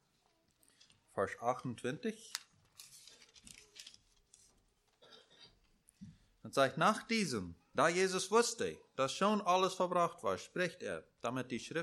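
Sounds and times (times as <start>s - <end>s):
speech: 1.2s - 2.4s, 6.5s - 11.8s
thin Bible pages rustling and flipping: 1.6s - 5.0s.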